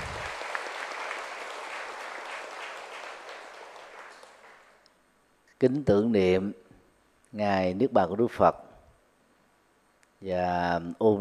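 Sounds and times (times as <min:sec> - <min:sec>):
audience applause at a Buddhist commemoration of the Buddha's Nirvana day: 0:00.0 - 0:04.8
speech: 0:05.6 - 0:06.6, 0:07.3 - 0:08.6, 0:10.2 - 0:11.2.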